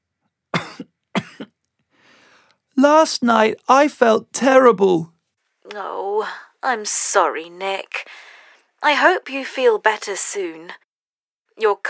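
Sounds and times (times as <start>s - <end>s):
person coughing: 0.6s - 1.6s
speech: 2.8s - 5.1s, 5.7s - 8.2s, 8.8s - 10.8s, 11.6s - 11.8s.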